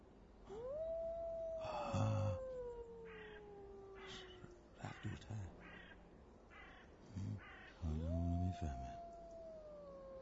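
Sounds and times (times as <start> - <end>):
animal howling: 0.5 - 5.4, 7.4 - 10.2.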